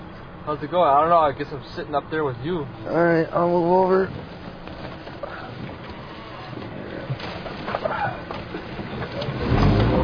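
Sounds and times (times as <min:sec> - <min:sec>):
speech: 0:00.5 - 0:04.4
car engine revving as the gas pedal is pressed: 0:04.0 - 0:10.0.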